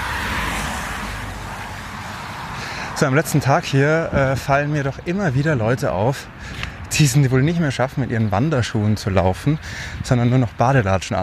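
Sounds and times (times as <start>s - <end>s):
car passing by with engine and tire roar: 0.0s - 3.5s
speech: 3.0s - 11.2s.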